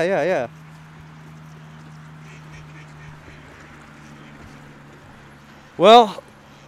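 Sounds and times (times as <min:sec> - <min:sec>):
speech: 0:00.0 - 0:00.6, 0:05.8 - 0:06.2
steady low engine-like hum: 0:00.0 - 0:06.6
flock of ducks quacking and honking while being fed: 0:00.5 - 0:05.6.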